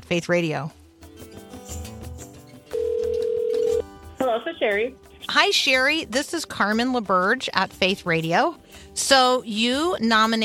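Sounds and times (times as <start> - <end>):
soft music: 0.0 - 10.4
speech: 0.1 - 0.8, 4.4 - 10.4
electronic ringback tone of an outgoing call from a radio station: 2.7 - 3.9.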